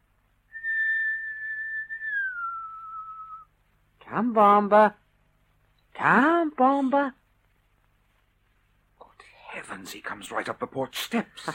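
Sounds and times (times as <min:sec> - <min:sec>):
faint hum: 0:00.0 - 0:11.5
man whistling to call an animal: 0:00.5 - 0:03.5
speech: 0:04.1 - 0:05.0, 0:06.0 - 0:07.2, 0:09.6 - 0:11.5.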